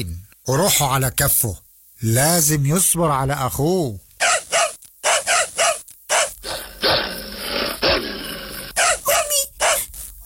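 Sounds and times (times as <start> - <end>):
speech: 0.0 - 4.0
dogs barking loudly: 4.2 - 9.9
harsh continuous roaring noise: 6.4 - 9.0.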